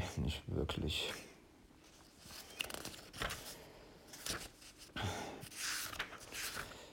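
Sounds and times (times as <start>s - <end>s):
speech: 0.1s - 1.3s
pages of a book being flipped through: 2.2s - 3.5s, 4.1s - 4.9s, 5.5s - 6.7s.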